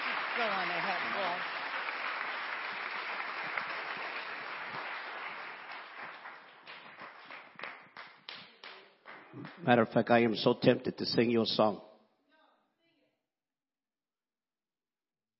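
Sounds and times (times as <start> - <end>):
congregation clapping hands in dense applause: 0.0 - 10.3
speech: 0.4 - 1.6, 9.6 - 11.9.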